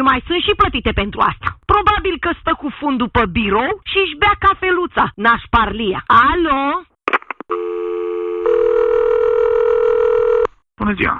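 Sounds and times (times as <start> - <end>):
speech: 0.0 - 6.9, 10.8 - 11.1
telephone line beeps: 7.5 - 10.5.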